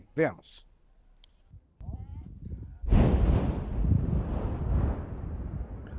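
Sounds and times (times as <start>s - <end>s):
speech: 0.2s - 0.7s
wind buffeting the microphone: 1.5s - 5.9s
mining blast explosion with heavy boom and roaring rumble: 2.8s - 5.9s.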